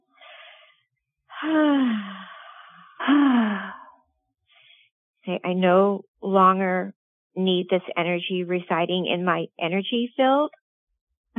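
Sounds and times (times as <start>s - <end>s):
short airy inhale: 0.2s - 0.7s, 1.4s - 3.9s
speech: 1.4s - 2.2s, 5.3s - 10.6s
long audible exhales with voiced falling sigh: 1.4s - 3.9s.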